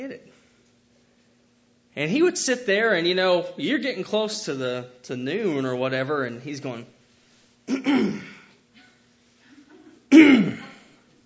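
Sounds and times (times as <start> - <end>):
speech: 2.0 - 7.0, 7.7 - 8.3, 10.1 - 10.7
voice imitating elder in church audience clearing his throat: 7.7 - 8.5, 10.1 - 10.9.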